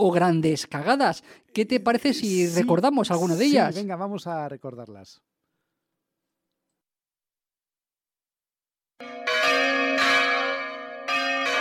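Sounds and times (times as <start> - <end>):
speech: 0.0 - 5.3
church bells chiming on New Year's Eve: 9.0 - 11.5.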